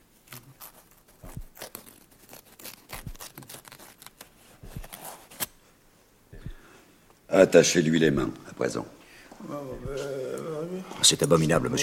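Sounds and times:
soft tearing and rustling of shirt fabric: 0.0 - 5.6
scissors cutting open a shirt collar: 0.3 - 5.5
speech: 7.3 - 9.0, 11.0 - 11.8.

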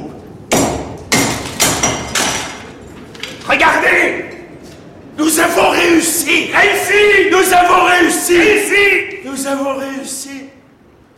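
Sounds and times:
big hammer breaking open a sealed crucible: 0.5 - 3.6
speech: 3.5 - 4.3, 6.2 - 10.6.

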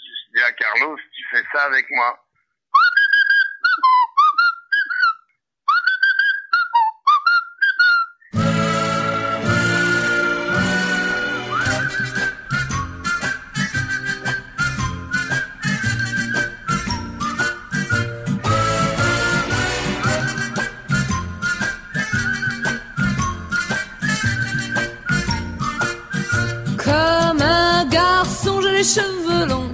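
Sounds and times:
speech: 0.7 - 2.2
bright gliding whistled melody in a song: 2.8 - 29.1.

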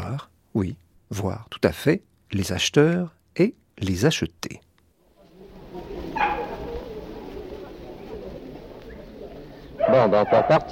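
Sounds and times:
speech: 0.1 - 4.7, 9.9 - 10.6
crowd murmur and indistinct voices in a busy outdoor market: 5.0 - 10.6
dog barking at a pet market: 6.2 - 6.7, 9.8 - 10.6.

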